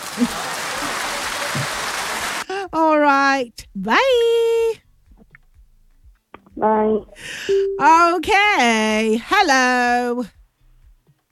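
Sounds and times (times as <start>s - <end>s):
crowd applauding: 0.0s - 2.4s
speech: 2.7s - 4.6s, 6.6s - 10.4s.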